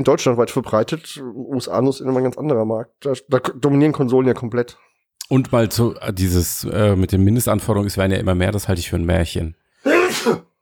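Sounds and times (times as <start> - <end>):
speech: 0.0 - 9.6, 10.2 - 10.5
person sneezing: 9.8 - 10.6.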